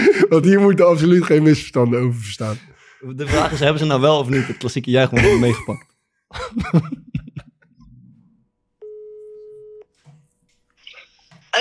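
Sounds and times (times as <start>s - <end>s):
laughter: 0.0s - 0.8s, 3.2s - 7.7s
speech: 0.3s - 7.1s
telephone ringback tone while placing a call: 8.8s - 9.8s.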